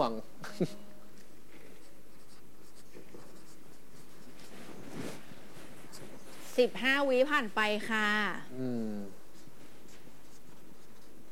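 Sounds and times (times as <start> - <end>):
speech: 0.0 - 0.9, 6.6 - 9.2
pen scratching across paper during a writing game: 1.8 - 5.2, 9.3 - 11.3.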